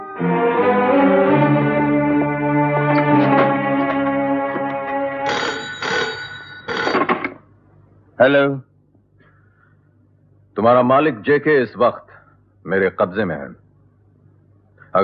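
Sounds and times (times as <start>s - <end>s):
tonal sound: 0.0s - 6.8s
telephone ringing during an outgoing call: 5.1s - 7.2s
speech: 8.2s - 8.7s, 10.6s - 13.6s.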